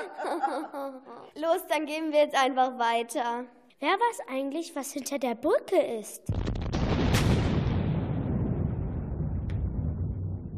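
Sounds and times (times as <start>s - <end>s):
laughter: 0.0s - 1.3s
speech: 0.0s - 6.6s
crack of thunder with rolling rumble: 6.3s - 10.5s.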